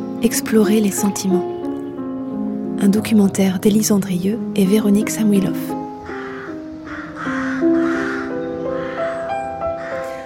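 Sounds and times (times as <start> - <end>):
speech: 0.2 - 1.5, 2.8 - 5.8
rooks cawing in the trees: 5.8 - 10.2.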